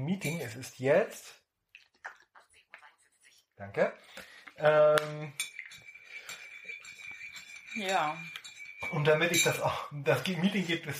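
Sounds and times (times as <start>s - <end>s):
coffee cup clinking: 0.1s - 0.6s, 4.7s - 10.7s
speech: 0.1s - 1.4s, 3.6s - 5.5s, 7.8s - 10.9s.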